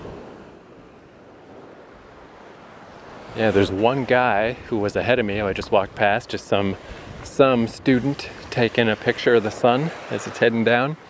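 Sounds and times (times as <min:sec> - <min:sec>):
ocean surf washing onto a small beach at sunset: 0:00.0 - 0:11.0
wind noise: 0:01.6 - 0:10.4
speech: 0:03.4 - 0:11.0.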